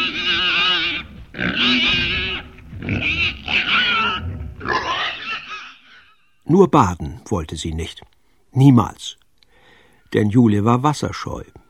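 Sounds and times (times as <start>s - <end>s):
small piglet grunting at the bow of a sailboat in salty wind: 0.0s - 6.3s
speech: 6.5s - 9.2s, 10.1s - 11.6s.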